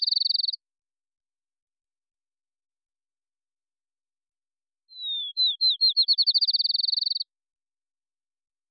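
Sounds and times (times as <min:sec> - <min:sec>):
field sparrow singing: 0:00.0 - 0:00.6, 0:04.9 - 0:07.4.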